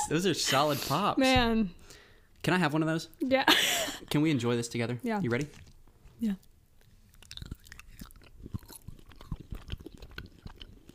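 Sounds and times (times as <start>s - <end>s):
speech: 0.1s - 6.5s
chewing chocolate at the microphone: 6.4s - 10.9s.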